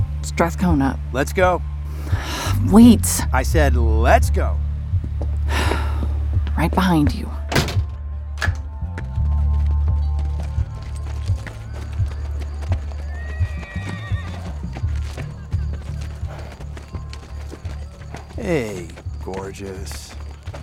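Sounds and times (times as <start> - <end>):
speech: 0.3 - 4.7, 6.6 - 7.4, 18.4 - 20.1
pony hooves clip-clopping: 4.9 - 20.6
pony whinny: 13.0 - 14.6.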